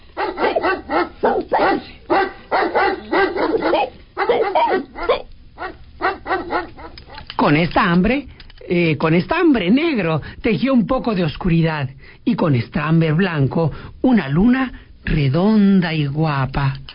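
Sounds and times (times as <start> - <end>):
puppy barking: 0.2 - 7.2
speech: 7.5 - 16.8.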